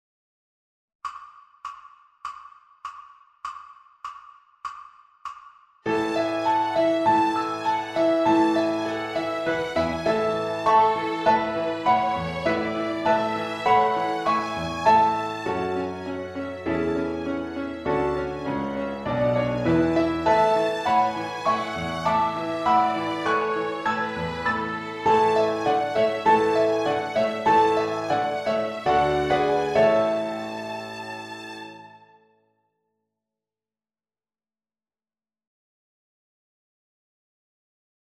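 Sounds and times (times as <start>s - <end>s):
violin and piano backing track: 5.9s - 32.2s.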